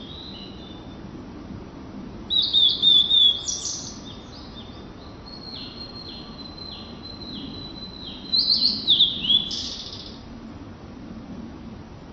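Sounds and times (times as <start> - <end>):
blue-and-white flycatcher song: 0.0 - 1.0, 2.3 - 10.2.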